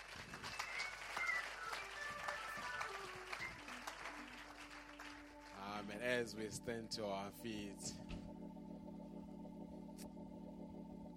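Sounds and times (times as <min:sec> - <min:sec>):
church audience applause: 0:00.0 - 0:06.0
soft sustained keyboard notes drifting downward: 0:01.0 - 0:11.1
speech: 0:05.9 - 0:08.2.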